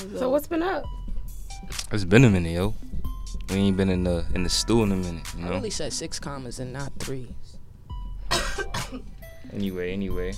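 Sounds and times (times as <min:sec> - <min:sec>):
speech: 0:00.1 - 0:01.0, 0:01.6 - 0:07.6, 0:08.9 - 0:10.3
harsh coughs: 0:08.2 - 0:09.2.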